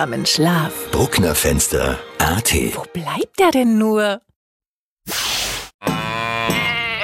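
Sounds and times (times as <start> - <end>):
speech: 0.0 - 4.3
sheep bleating: 5.8 - 7.0.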